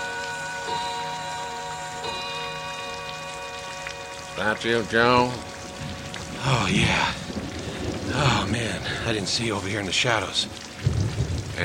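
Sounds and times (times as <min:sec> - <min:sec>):
faint steady tonal hum: 0:00.0 - 0:07.5
steady rain falling: 0:00.0 - 0:11.6
speech: 0:04.4 - 0:07.2, 0:08.1 - 0:10.6.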